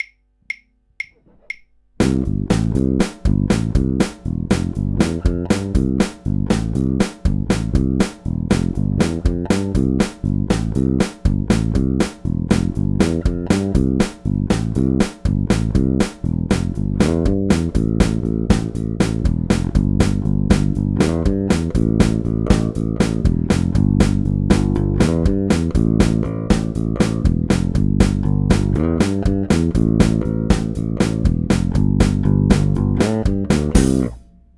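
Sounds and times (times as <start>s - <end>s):
clean bass: 2.0s - 34.5s.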